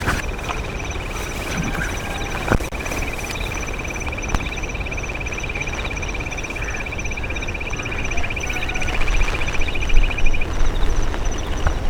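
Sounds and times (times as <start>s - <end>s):
jungle bush quail calling: 0.0s - 11.8s.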